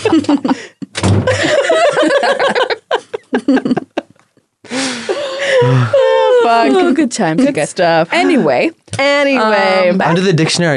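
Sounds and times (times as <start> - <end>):
speech: 0.0 - 0.7, 7.0 - 10.7
people laughing and chuckling: 0.0 - 4.2, 5.1 - 7.0, 10.0 - 10.7
door slamming shut: 0.9 - 1.5.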